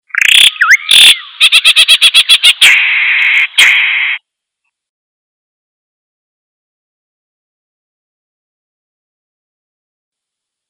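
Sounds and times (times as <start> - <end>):
unfamiliar bird calling: 0.0 - 4.2.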